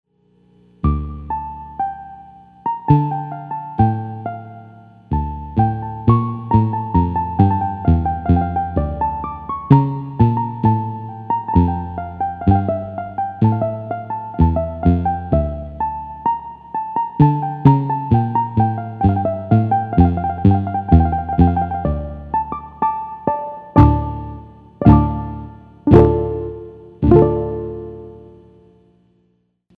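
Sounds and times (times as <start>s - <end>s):
Farfisa combo organ: 0.8s - 28.7s
piano harp clavichord split: 24.8s - 28.2s.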